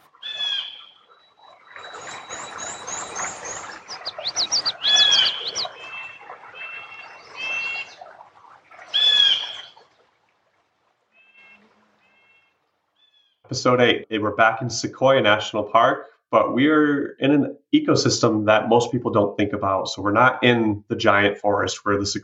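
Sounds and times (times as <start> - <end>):
blue jay calling: 0.0 - 1.2, 1.8 - 8.0, 8.9 - 9.7, 11.2 - 13.4
chorus of other birds: 0.0 - 10.1, 11.2 - 13.5
speech: 13.6 - 22.2.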